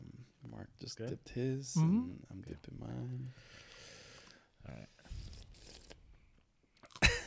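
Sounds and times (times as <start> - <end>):
speech: 0.8 - 3.6, 4.6 - 5.0
chewing: 5.2 - 7.0
person biting into a crunchy dipped chocolate-tasting snack: 5.2 - 7.1.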